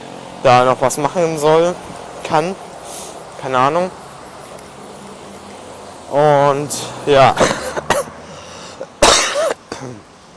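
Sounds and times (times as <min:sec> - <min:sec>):
speech: 0:00.4 - 0:02.6, 0:03.4 - 0:04.0, 0:06.1 - 0:07.6
harsh hacking coughs: 0:07.4 - 0:08.2, 0:08.8 - 0:10.0.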